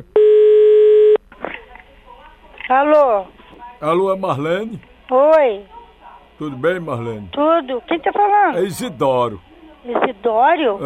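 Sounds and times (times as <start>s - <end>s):
telephone tone while placing a phone call: 0.0s - 1.2s
faint low noise: 0.0s - 10.8s
speech: 2.7s - 5.8s, 6.4s - 10.8s.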